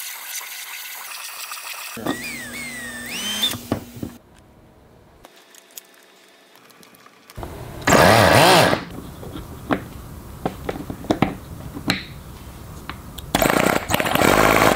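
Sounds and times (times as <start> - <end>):
small flooded rotary engine cranking and starting after rebuild with new apex seals: 2.0 - 4.2, 7.4 - 8.9, 13.3 - 14.7.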